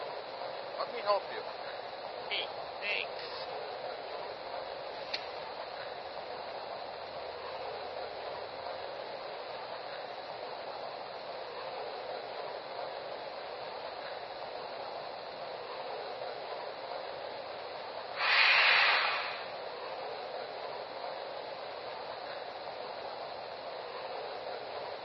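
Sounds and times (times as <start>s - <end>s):
passenger train idling at a station platform: 0.0s - 25.0s
speech: 0.8s - 1.7s, 2.3s - 3.6s
burst of hissing air from a passenger train: 18.1s - 19.7s.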